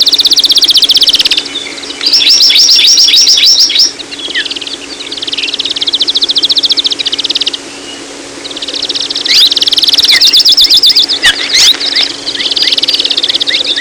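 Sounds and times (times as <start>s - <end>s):
amakihi singing rapid dry high trills: 0.0s - 13.7s
steady low hum: 0.0s - 13.7s.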